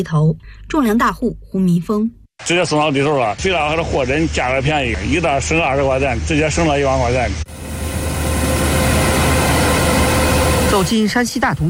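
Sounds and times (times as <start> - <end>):
speech: 0.0 - 7.6, 10.7 - 11.6
combine harvester working at full power in a corn field: 3.3 - 11.6.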